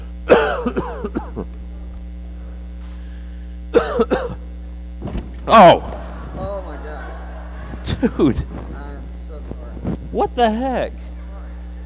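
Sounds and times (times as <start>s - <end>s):
steady low electrical hum: 0.0s - 11.8s
person coughing hard: 0.3s - 1.5s, 3.8s - 4.4s
speech: 0.6s - 1.0s, 5.5s - 5.9s, 8.0s - 8.6s, 10.2s - 11.0s
laughter: 5.4s - 11.8s.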